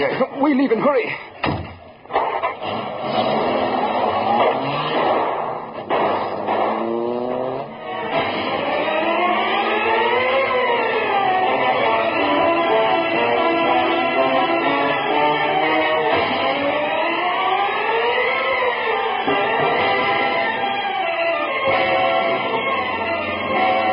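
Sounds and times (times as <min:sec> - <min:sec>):
speech: 0:00.0 - 0:01.3
dull thuds: 0:01.4 - 0:02.3
car engine revving as the car pulls away: 0:02.1 - 0:20.7, 0:21.6 - 0:23.9.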